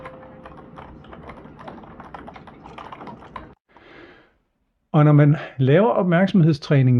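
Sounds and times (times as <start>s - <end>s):
fingers typing on a computer keyboard inside a train: 0.0s - 3.6s
speech: 5.0s - 6.9s.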